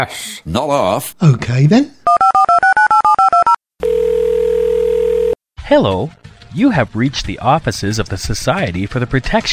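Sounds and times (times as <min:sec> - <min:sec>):
speech: 0:00.0 - 0:02.3, 0:05.7 - 0:09.5
touch-tone telephone dialing beeps: 0:02.1 - 0:04.4
steady continuous telephone tone: 0:02.1 - 0:05.4.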